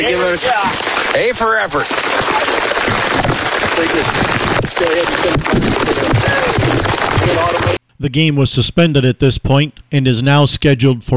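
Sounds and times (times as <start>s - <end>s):
speech: 0.0s - 3.2s, 3.8s - 11.1s
steady dense rain hissing during a ball game: 0.0s - 7.8s.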